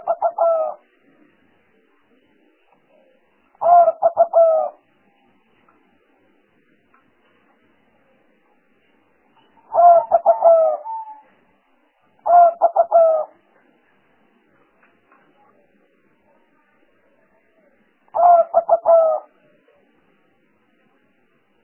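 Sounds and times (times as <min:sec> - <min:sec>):
spotted dove giving rapid stuttering coos as a trapping lure: 0:00.0 - 0:00.8, 0:03.6 - 0:04.8, 0:09.6 - 0:11.3, 0:12.2 - 0:13.4, 0:18.2 - 0:19.4.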